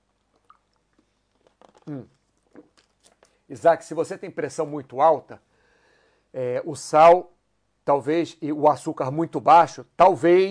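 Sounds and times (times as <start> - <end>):
quiet lip sounds: 0.0 - 3.4
soft wet mouth clicks: 0.0 - 3.4
person sipping water: 0.1 - 3.4
loud brief gulping swallow: 0.4 - 3.2
speech: 1.9 - 2.2, 3.5 - 5.5, 6.3 - 7.3, 7.9 - 10.5.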